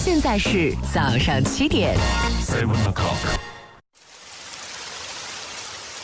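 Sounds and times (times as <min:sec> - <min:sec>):
speech: 0:00.1 - 0:03.5
steady rain falling: 0:04.0 - 0:06.0.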